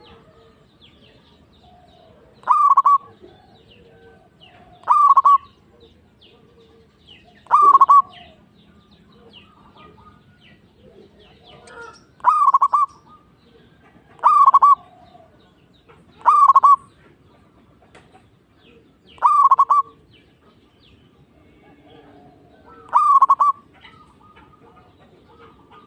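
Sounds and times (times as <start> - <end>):
zebra dove cooing: 1.7 - 8.4, 10.8 - 15.4, 16.2 - 16.9, 18.7 - 20.1, 21.6 - 25.8.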